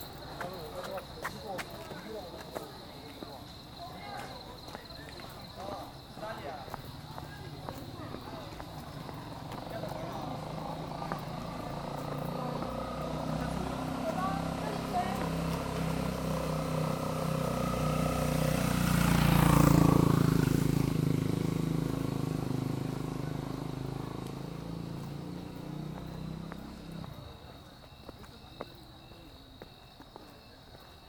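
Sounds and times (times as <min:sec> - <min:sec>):
new students' voices murmuring at a college campus: 0:00.0 - 0:31.0
vehicle passing at a college campus: 0:03.4 - 0:27.8.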